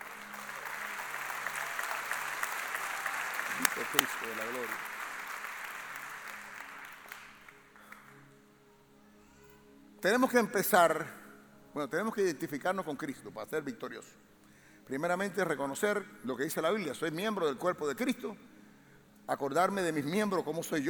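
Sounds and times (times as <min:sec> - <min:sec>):
congregation applauding: 0:00.0 - 0:08.2
speech: 0:03.8 - 0:05.0, 0:10.0 - 0:14.3, 0:14.9 - 0:18.5, 0:19.3 - 0:20.8.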